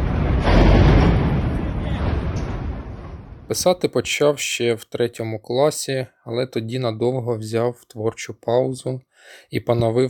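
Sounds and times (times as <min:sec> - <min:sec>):
heavy explosion at night in Kharkiv: 0:00.0 - 0:03.8
speech: 0:03.5 - 0:10.0.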